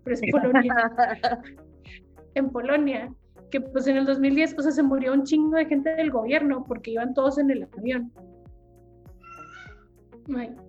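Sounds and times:
speech: 0:00.1 - 0:08.3, 0:10.3 - 0:10.6
laughter: 0:00.2 - 0:01.5
domestic cat yowling: 0:09.2 - 0:09.8.

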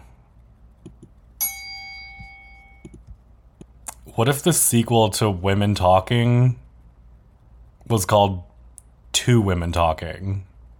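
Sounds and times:
bright bell ding: 0:01.4 - 0:02.9
speech: 0:04.1 - 0:06.6, 0:07.9 - 0:08.5, 0:09.2 - 0:10.5.

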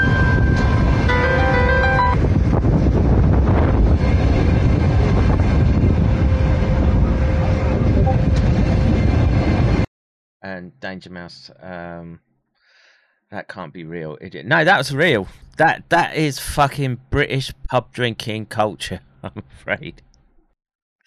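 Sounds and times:
brief tonal squeals of passenger train: 0:00.0 - 0:02.4
passenger train crossing a bridge: 0:00.0 - 0:09.9
wind buffeting the microphone: 0:02.2 - 0:09.8
speech: 0:10.8 - 0:12.3, 0:13.3 - 0:20.1.

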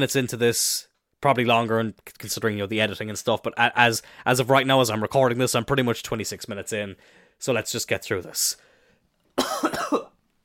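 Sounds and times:
speech: 0:00.0 - 0:08.7, 0:09.4 - 0:10.1
harsh hacking coughing: 0:09.4 - 0:10.2.

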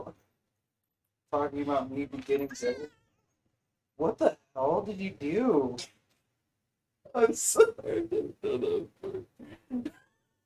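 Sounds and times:
speech: 0:01.3 - 0:03.0, 0:04.0 - 0:06.0, 0:07.1 - 0:10.0
pet cat meowing: 0:02.5 - 0:03.3.

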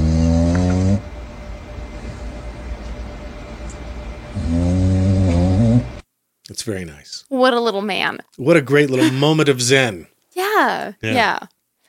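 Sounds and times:
raccoon snoring lying in a drawer in a shop: 0:00.0 - 0:01.1, 0:04.3 - 0:06.0
speech: 0:06.6 - 0:11.5.

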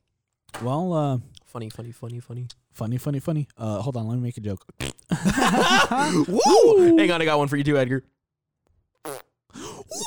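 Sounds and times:
speech: 0:00.6 - 0:08.1
mouth-made fake fart noises: 0:04.8 - 0:05.2, 0:09.0 - 0:10.0
laughter: 0:05.1 - 0:06.9.

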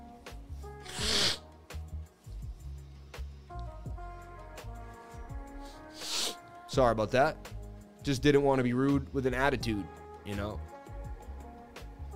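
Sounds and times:
music: 0:00.0 - 0:12.1
person blowing nose: 0:00.8 - 0:01.5, 0:05.1 - 0:06.5
speech: 0:06.8 - 0:10.7.

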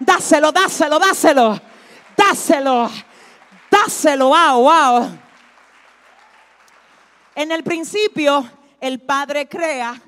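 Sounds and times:
speech: 0:00.1 - 0:03.1, 0:03.8 - 0:05.2, 0:07.4 - 0:10.0
crowd applauding: 0:01.3 - 0:07.8.

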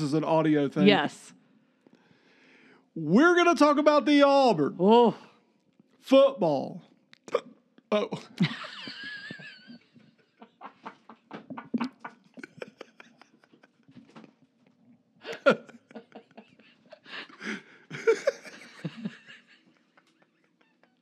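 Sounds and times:
speech: 0:00.0 - 0:01.4, 0:03.0 - 0:05.3, 0:06.0 - 0:08.8
person hiccupping: 0:07.2 - 0:08.4
person chuckling and laughing breathily: 0:07.9 - 0:14.4, 0:15.2 - 0:21.0.

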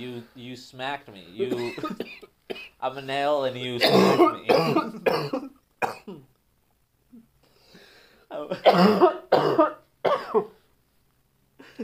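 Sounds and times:
speech: 0:00.0 - 0:06.2, 0:08.4 - 0:10.6
person coughing: 0:01.4 - 0:02.8, 0:03.8 - 0:06.3, 0:08.5 - 0:10.6.

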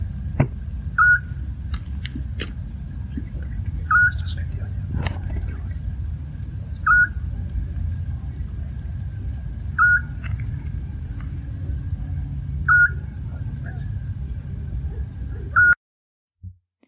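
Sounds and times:
constant hiss: 0:00.0 - 0:15.6
low rumble: 0:00.0 - 0:15.6
Eurasian scops owl giving short whistled notes in Osona, Catalonia, Spain: 0:00.9 - 0:01.4, 0:03.8 - 0:04.3, 0:06.8 - 0:07.2, 0:09.7 - 0:10.2, 0:12.6 - 0:13.2, 0:15.5 - 0:15.8.

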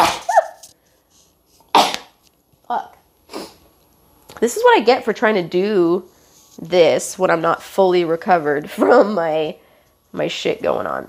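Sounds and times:
person sneezing: 0:00.0 - 0:00.6, 0:01.7 - 0:02.2, 0:03.3 - 0:03.6
speech: 0:04.4 - 0:11.0.

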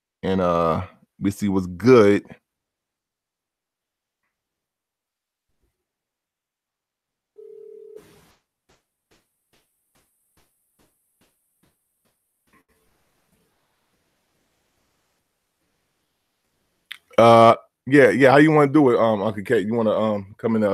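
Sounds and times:
speech: 0:00.2 - 0:02.4, 0:17.2 - 0:20.7
steady phone dial tone: 0:07.4 - 0:08.3
faint hiss of an open phone line: 0:08.0 - 0:16.8.

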